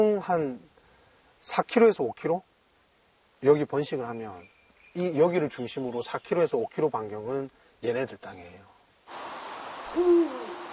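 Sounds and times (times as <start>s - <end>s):
speech: 0.0s - 0.7s, 1.4s - 2.5s, 3.4s - 9.2s
quiet hiss: 0.0s - 10.7s
Eurasian eagle-owl hooting: 9.9s - 10.7s.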